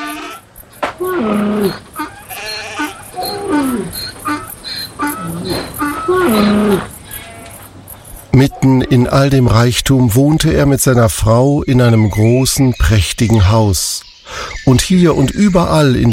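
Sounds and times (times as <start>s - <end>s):
several sheep and goats bleating: 0.0s - 0.5s, 1.4s - 7.6s
insects chirping: 0.0s - 16.1s
speech: 8.6s - 16.1s.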